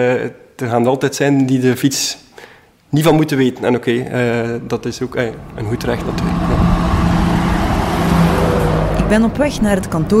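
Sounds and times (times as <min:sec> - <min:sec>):
speech: 0:00.0 - 0:02.3, 0:02.9 - 0:06.6, 0:09.1 - 0:10.1
heavy road traffic rumbling in a harbour: 0:04.1 - 0:10.1
trucks passing close by in a harbour: 0:04.1 - 0:10.1.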